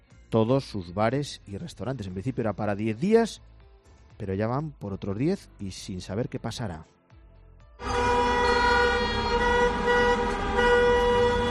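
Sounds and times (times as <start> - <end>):
speech: 0.3 - 3.5, 4.2 - 7.0
protest car horns honking in traffic: 7.8 - 11.4
traffic: 7.8 - 11.4.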